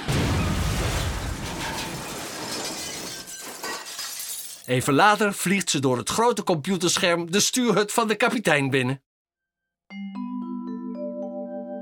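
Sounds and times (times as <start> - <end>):
robot's arm cannon blasting a hole in a wall: 0.0 - 4.7
speech: 4.7 - 9.1.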